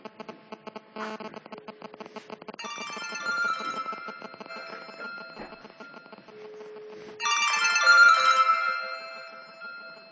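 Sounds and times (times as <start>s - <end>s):
mobile phone electronic ringtone: 2.6s - 10.1s.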